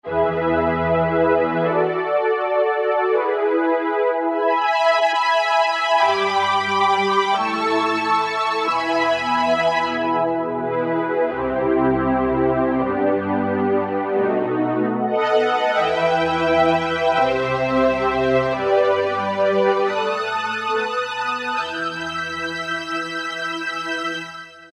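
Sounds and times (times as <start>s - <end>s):
strings and brass synthesizer patch on an E-mu Morpheus: 0.0s - 24.7s.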